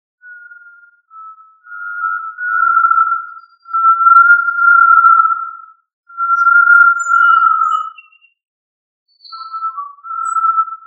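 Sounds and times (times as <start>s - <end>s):
tinamou of family Tinamidae whistling: 0.2s - 8.2s, 9.3s - 10.8s.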